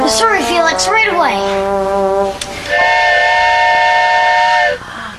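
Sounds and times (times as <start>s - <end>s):
speech: 0.1s - 2.4s
steam train whistle: 2.5s - 4.8s.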